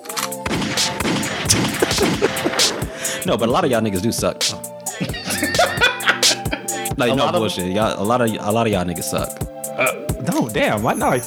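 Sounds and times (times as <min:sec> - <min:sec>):
gunshot sound effect: 0:00.4 - 0:02.9
laughter: 0:01.3 - 0:07.4
speech: 0:01.5 - 0:05.2, 0:07.0 - 0:11.2.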